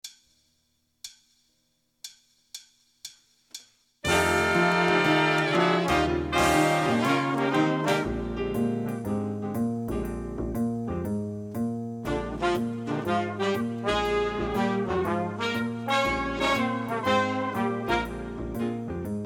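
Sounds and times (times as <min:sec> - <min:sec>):
B-flat blues backing track for wind improvisation: 0:04.0 - 0:19.2.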